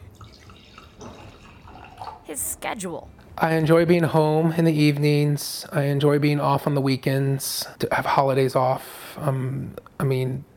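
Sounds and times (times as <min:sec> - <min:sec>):
Riesling wine poured into a glass: 0:00.1 - 0:02.2
speech: 0:02.3 - 0:10.5.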